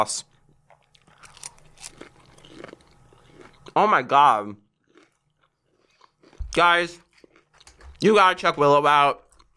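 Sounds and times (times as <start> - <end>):
speech: 0.0 - 0.3, 3.8 - 4.6, 6.6 - 7.0, 8.0 - 9.2
biting and crunching crispy fried calamari: 0.7 - 3.8, 4.7 - 8.1
chewing fried calamari: 0.7 - 3.8, 4.8 - 7.9.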